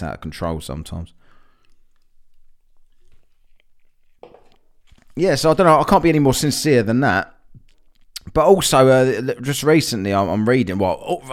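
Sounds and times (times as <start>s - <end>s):
speech: 0.0s - 1.3s, 5.2s - 7.4s, 8.3s - 11.3s
person sipping a drink: 1.6s - 5.2s.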